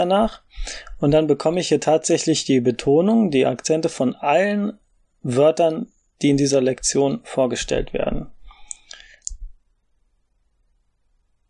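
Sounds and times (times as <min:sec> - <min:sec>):
speech: 0:00.0 - 0:08.4
soft breathy noise: 0:00.4 - 0:01.0, 0:08.4 - 0:09.5
computer mouse clicks: 0:08.6 - 0:09.4.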